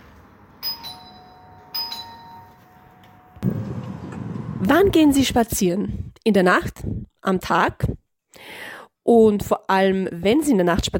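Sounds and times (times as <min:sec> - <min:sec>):
doorbell two-tone chime: 0:00.6 - 0:03.4
speech: 0:03.4 - 0:03.8, 0:04.6 - 0:08.0, 0:09.1 - 0:10.9.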